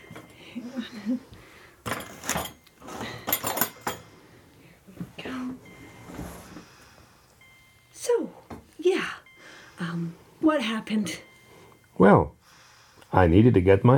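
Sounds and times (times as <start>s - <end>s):
speech: 0.8s - 1.4s, 10.0s - 11.3s, 12.0s - 12.4s, 13.1s - 13.9s
dishes and cutlery clattering on a dinner tray being moved off a chair: 1.8s - 4.1s.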